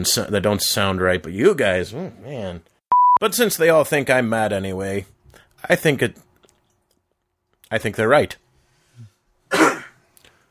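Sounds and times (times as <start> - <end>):
speech: 0.0 - 6.2, 7.7 - 8.4
harsh cough: 9.5 - 10.1.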